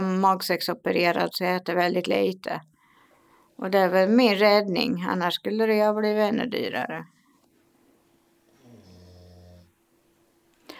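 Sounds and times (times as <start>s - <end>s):
speech: 0.2s - 2.7s, 3.6s - 7.2s
pet dog snoring: 8.5s - 9.8s.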